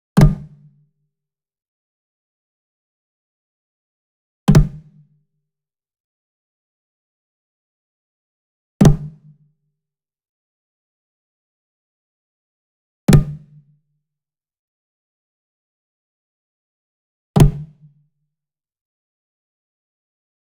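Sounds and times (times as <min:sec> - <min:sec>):
mounted wood drum flam slap: 0:00.2 - 0:00.6, 0:04.5 - 0:05.0, 0:08.8 - 0:09.2, 0:17.4 - 0:17.8.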